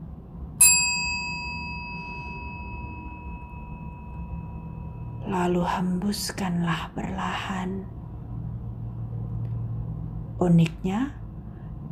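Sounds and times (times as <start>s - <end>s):
soft low hum: 0.0s - 11.9s
single bright metallic chime: 0.6s - 5.4s
speech: 5.3s - 8.0s, 10.4s - 11.2s.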